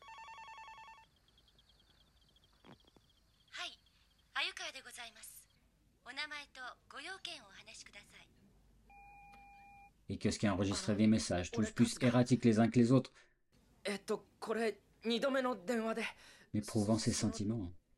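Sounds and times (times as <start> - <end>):
telephone ringing with a bright electronic trill: 0.0 - 1.2
speech: 4.8 - 5.4, 6.0 - 8.4, 10.1 - 17.8
short beep: 8.9 - 9.9.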